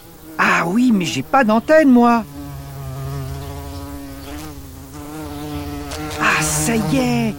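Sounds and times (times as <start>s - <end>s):
small fly buzzing: 0.0s - 7.3s
speech: 0.6s - 2.3s, 6.7s - 7.3s.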